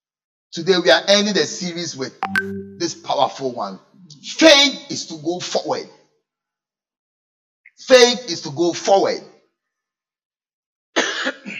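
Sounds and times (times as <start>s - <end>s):
speech: 0.5s - 6.0s, 7.8s - 9.3s
loud harsh two-part cough: 11.0s - 11.5s.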